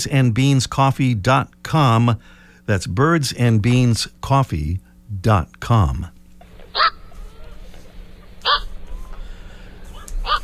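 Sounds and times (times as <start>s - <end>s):
speech: 0.0s - 6.2s
low steady hum: 0.0s - 10.4s
black-crowned night heron quawk calls: 6.7s - 7.2s, 8.4s - 8.8s, 9.9s - 10.4s.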